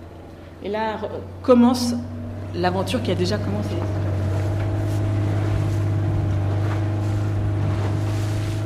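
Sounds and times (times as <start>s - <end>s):
motorboat engine droning as the boat puts out to sea: 0.0s - 8.6s
speech: 0.6s - 4.0s
water rushing and splashing against the hull: 3.4s - 8.6s.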